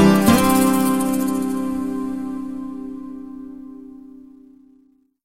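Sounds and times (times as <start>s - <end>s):
Iranian beats mobile phone ringtone remix: 0.1s - 2.2s.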